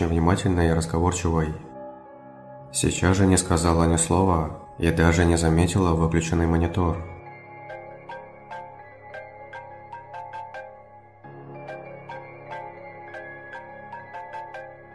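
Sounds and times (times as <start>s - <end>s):
speech: 0.0s - 1.7s, 2.7s - 7.1s
mobile phone ringing with a melodic ringtone in a bedroom late at night: 7.2s - 14.9s.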